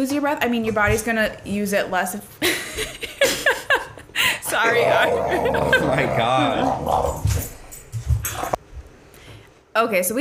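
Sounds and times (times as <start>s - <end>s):
speech: 0.0s - 3.1s, 4.6s - 7.2s, 9.8s - 10.1s
laughter: 2.4s - 6.9s
female dog growling and whimpering: 4.6s - 7.5s.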